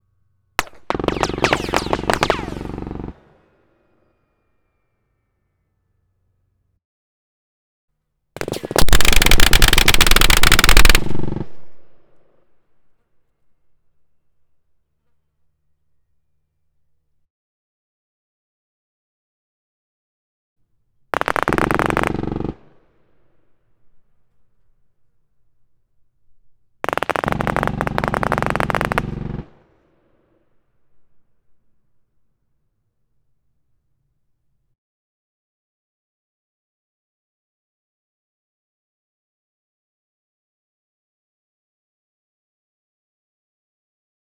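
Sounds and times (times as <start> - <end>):
MG 42 machine gun firing long burst on a mountain top: 0.6 - 3.2, 8.4 - 11.9, 21.1 - 22.8, 26.8 - 29.7.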